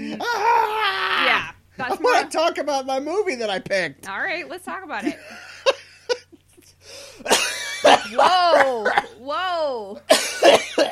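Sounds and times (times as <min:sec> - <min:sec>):
strained, wheezy vocal sounds and throat noises: 0:00.0 - 0:00.7
speech: 0:01.8 - 0:05.5, 0:07.9 - 0:10.9
harsh coughs in quick succession: 0:07.1 - 0:09.2, 0:10.1 - 0:10.9.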